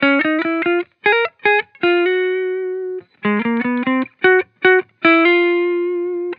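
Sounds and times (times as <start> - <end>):
chill guitar loop in C sharp major: 0.0 - 6.3.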